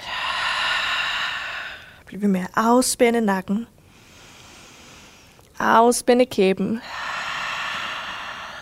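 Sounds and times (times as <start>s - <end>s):
deep breath while holding a yoga pose: 0.0s - 2.0s, 3.8s - 5.4s, 6.8s - 8.6s
speech: 2.1s - 3.8s, 5.6s - 7.0s.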